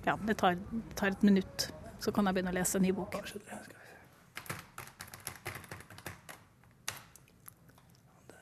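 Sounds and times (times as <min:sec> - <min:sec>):
speech: 0:00.0 - 0:04.0
typing on a computer keyboard while ordering e-books online: 0:04.4 - 0:07.3.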